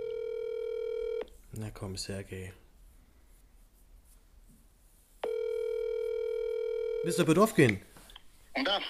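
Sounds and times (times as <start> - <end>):
electronic ringing tone of an outgoing phone call: 0.0 - 1.3, 5.2 - 7.4
speech: 1.6 - 2.6, 7.0 - 7.9, 8.6 - 8.8.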